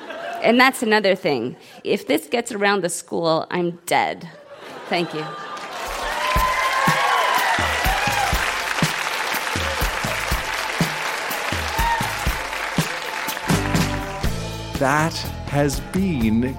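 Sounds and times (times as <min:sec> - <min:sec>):
laughter: 0:00.0 - 0:00.5, 0:04.3 - 0:06.6, 0:09.3 - 0:11.3
speech: 0:00.4 - 0:05.5, 0:14.8 - 0:16.5
audience cheering: 0:05.1 - 0:14.1
large audience clapping: 0:05.5 - 0:14.4.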